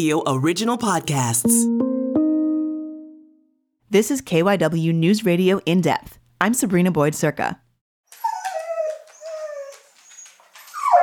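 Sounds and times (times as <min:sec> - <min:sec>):
speech: 0:00.0 - 0:01.9, 0:03.9 - 0:07.6
dog whimpering and howling: 0:08.1 - 0:11.0.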